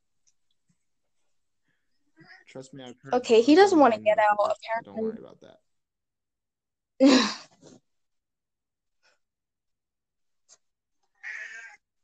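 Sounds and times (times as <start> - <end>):
speech: 2.3 - 5.7, 7.0 - 7.8
house cat meowing: 11.2 - 11.8.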